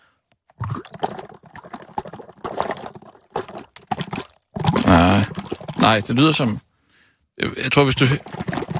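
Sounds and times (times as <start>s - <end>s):
liquid sloshing and gurgling as attempted hookah bubbling: 0.5s - 6.6s, 7.8s - 8.7s
speech: 5.2s - 6.6s, 7.4s - 8.4s.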